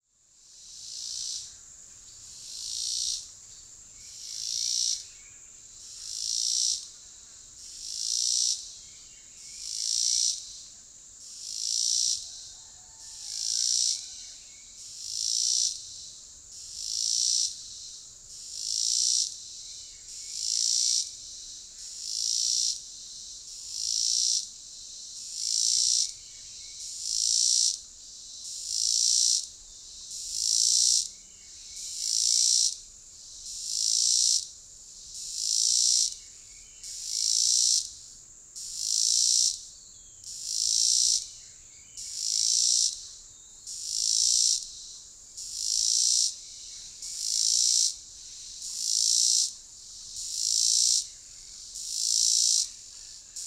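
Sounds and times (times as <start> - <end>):
cicada: 0.0 - 53.4.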